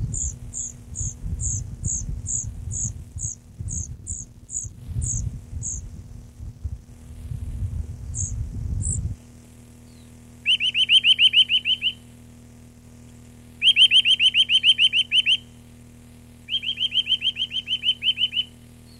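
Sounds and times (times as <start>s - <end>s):
Eurasian nuthatch song in rapid trills of rising whistled notes: 0.0s - 6.0s, 8.1s - 9.1s, 9.8s - 12.1s, 13.6s - 15.6s, 16.4s - 18.9s.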